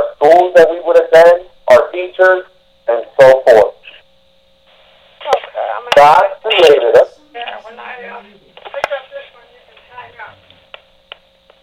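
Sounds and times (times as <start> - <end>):
indistinct voices over a thin tinny phone line: 0.0 - 4.2, 4.8 - 10.7
speech: 0.3 - 1.4, 2.0 - 3.7, 6.0 - 7.1.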